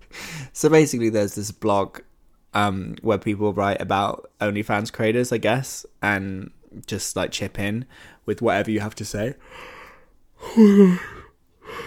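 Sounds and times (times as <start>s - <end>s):
faint breathy exhale: 0.1s - 0.6s, 9.4s - 11.8s
speech: 0.6s - 9.8s, 10.4s - 11.8s
person yawning: 10.4s - 11.8s.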